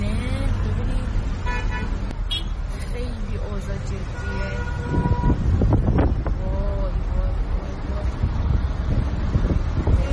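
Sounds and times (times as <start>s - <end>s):
road rumble of passing quarantine vehicles during the coronavirus outbreak: 0.0s - 10.1s
vehicle horn honk: 1.4s - 2.6s, 4.2s - 5.5s.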